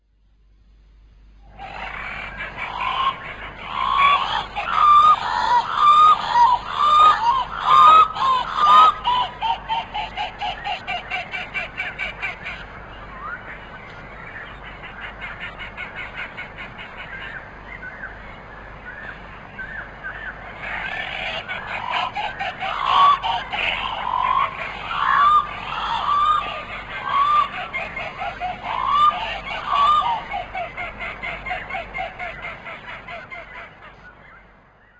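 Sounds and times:
channel-billed cuckoo calling: 1.5 - 34.9.

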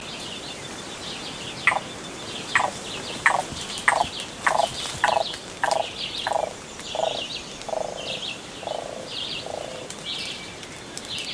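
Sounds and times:
pearly-breasted cuckoo calling: 1.6 - 10.0.

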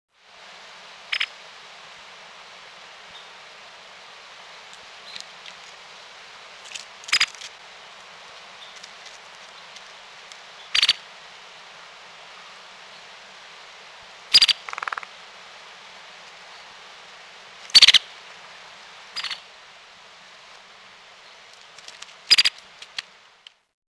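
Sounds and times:
white-headed woodpecker: 7.1 - 7.4, 10.7 - 11.0, 14.3 - 15.1, 17.8 - 18.0, 22.3 - 22.6.

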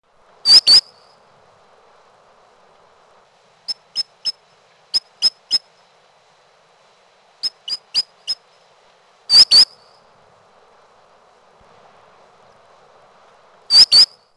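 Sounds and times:
solitary sandpiper calling: 0.4 - 1.2, 3.6 - 5.7, 7.4 - 8.5, 9.3 - 10.1, 13.7 - 14.2.

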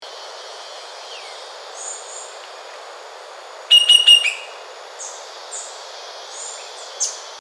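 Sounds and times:
cinnamon woodpecker: 3.7 - 4.6.

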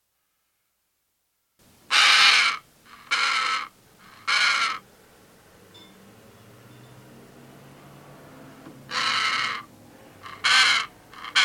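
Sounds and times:
Pesquet's parrot screeching: 1.9 - 4.8, 8.9 - 11.4.

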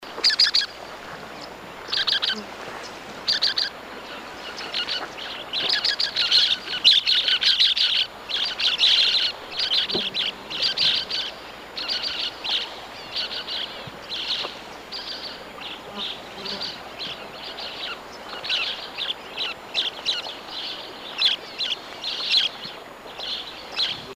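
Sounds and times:
mountain parakeet calling: 0.2 - 0.8, 1.4 - 2.5, 3.2 - 22.6.

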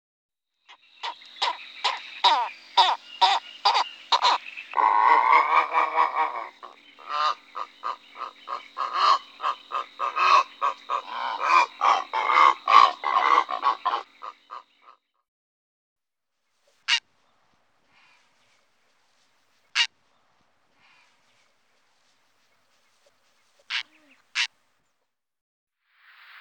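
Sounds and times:
purple heron uttering harsh grating croaks: 0.7 - 15.0, 23.7 - 24.6
speech: 2.2 - 2.6.

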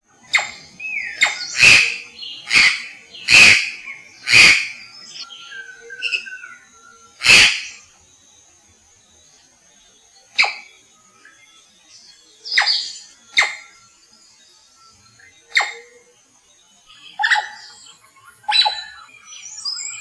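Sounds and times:
white-throated magpie jay calling: 0.3 - 6.4, 7.2 - 7.8, 10.3 - 10.7, 12.4 - 13.7, 15.5 - 15.9, 17.0 - 17.7, 18.4 - 19.0.

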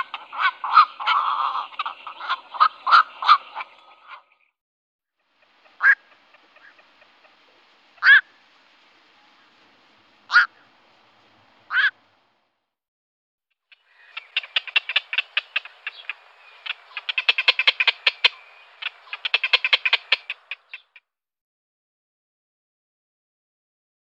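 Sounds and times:
black-crowned night heron squawks: 0.0 - 4.4, 5.4 - 8.4, 10.3 - 10.7, 11.7 - 12.0, 13.7 - 21.0.

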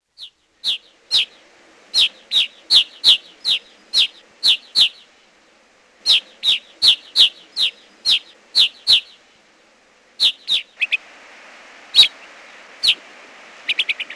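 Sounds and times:
grey crowned rosy finch calling: 0.0 - 5.1, 6.0 - 9.2, 10.2 - 11.0, 11.9 - 13.0, 13.6 - 14.1.

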